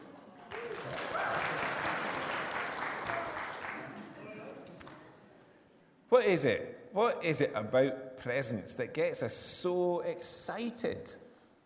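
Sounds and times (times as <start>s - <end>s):
audience applause: 0.0s - 4.2s
speech: 6.1s - 11.2s.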